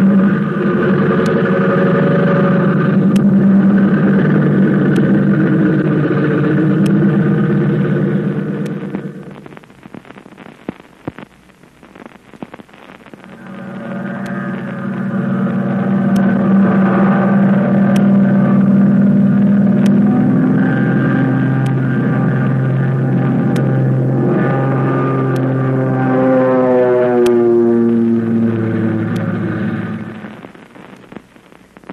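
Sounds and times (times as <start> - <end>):
airplane engine revving for takeoff: 0.0 - 9.4, 13.2 - 30.6.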